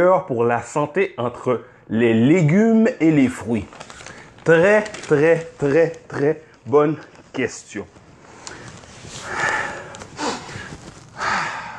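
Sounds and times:
speech: 0:00.0 - 0:03.8, 0:04.4 - 0:08.0
speaker taking loud airy sniff-like breaths: 0:08.3 - 0:11.7.

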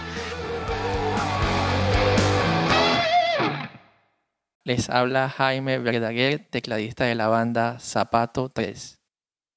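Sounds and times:
heavily distorted electric guitar through cranked miked tube amp: 0:00.0 - 0:03.9
speech: 0:04.7 - 0:09.0.

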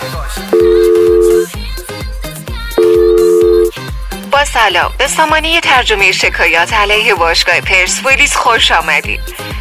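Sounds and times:
thumping rhythmic music track: 0:00.5 - 0:01.6, 0:02.4 - 0:03.7
long steady telephone tones of an automated phone line: 0:00.6 - 0:01.5, 0:02.8 - 0:03.7
speech: 0:04.4 - 0:09.5.

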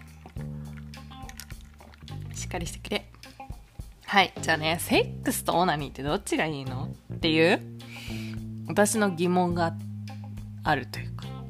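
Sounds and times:
drink being sipped after a toast: 0:00.0 - 0:02.4
small squishy liquid drips: 0:00.0 - 0:03.3
speech: 0:02.4 - 0:03.2, 0:04.1 - 0:09.8, 0:10.6 - 0:11.4.

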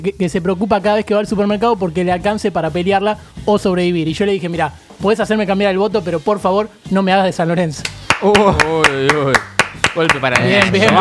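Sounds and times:
speech: 0:00.0 - 0:11.0
hosts clapping hands: 0:07.8 - 0:11.0.

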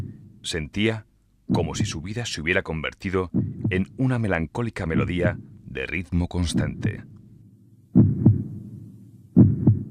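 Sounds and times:
heartbeat thumps: 0:00.0 - 0:00.4, 0:01.5 - 0:02.0, 0:03.2 - 0:04.1, 0:04.9 - 0:05.6, 0:07.9 - 0:09.9
low steady rumble: 0:00.0 - 0:09.9
speech: 0:00.4 - 0:07.2.

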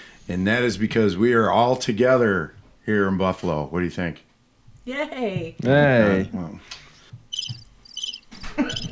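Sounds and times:
speech: 0:00.3 - 0:06.8
crickets chirping: 0:07.3 - 0:08.9.

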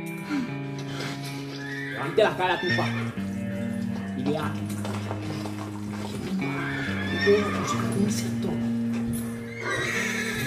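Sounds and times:
horse neighing and whinnying: 0:01.1 - 0:04.2, 0:05.0 - 0:10.4
speech: 0:02.0 - 0:03.2, 0:04.2 - 0:04.7, 0:07.2 - 0:08.6
faint hoof clatter: 0:02.7 - 0:10.4.

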